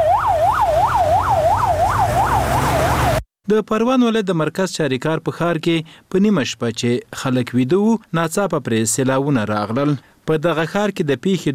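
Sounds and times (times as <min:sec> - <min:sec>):
ambulance siren wailing after floods: 0:00.0 - 0:03.2
speech: 0:03.5 - 0:11.5.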